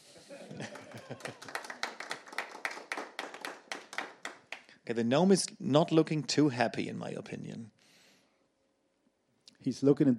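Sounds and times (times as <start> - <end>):
laughter: 0.2 - 1.7
small round of applause from a few people: 0.5 - 4.8
speech: 4.9 - 7.8, 9.6 - 10.1.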